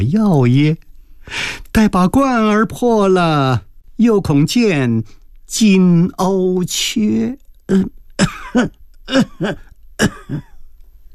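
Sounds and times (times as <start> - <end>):
speech: 0.0 - 10.5
man coughing: 7.7 - 10.7.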